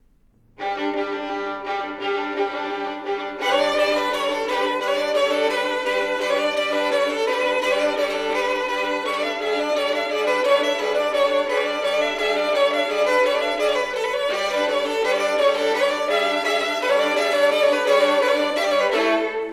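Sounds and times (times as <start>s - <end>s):
duet for two violins: 0.5s - 19.5s
bagpipes: 0.8s - 19.5s.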